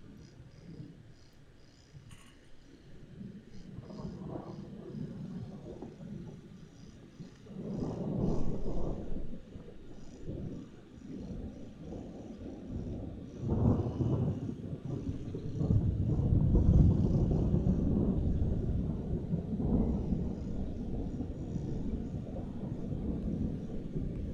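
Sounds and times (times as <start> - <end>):
wind buffeting the microphone: 2.6 - 24.3
thunder rumbling in a storm: 7.5 - 24.3.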